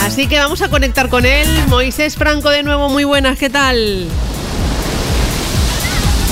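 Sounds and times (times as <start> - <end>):
speech: 0.2 - 4.7
waves on the beach at Salobreña: 3.7 - 6.3.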